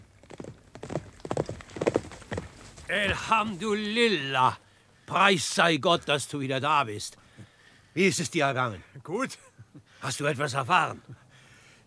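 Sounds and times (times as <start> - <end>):
hoofbeats of a horse galloping toward a tent camp: 0.0 - 4.0
speech: 2.9 - 7.2, 8.0 - 11.1.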